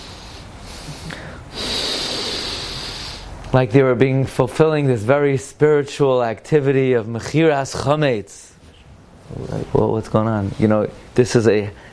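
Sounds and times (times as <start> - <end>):
voice imitating someone taking deep breaths: 0.0 - 3.4
speech: 3.6 - 8.5, 9.3 - 11.9.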